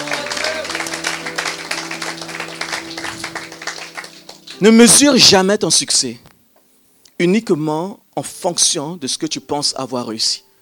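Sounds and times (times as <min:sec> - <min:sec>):
audience clapping: 0:00.0 - 0:05.1
speech: 0:04.6 - 0:06.3, 0:07.2 - 0:10.5.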